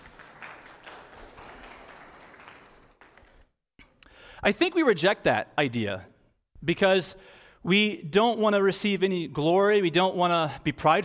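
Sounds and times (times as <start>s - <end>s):
audience applause: 0.0s - 3.5s
speech: 4.4s - 11.0s.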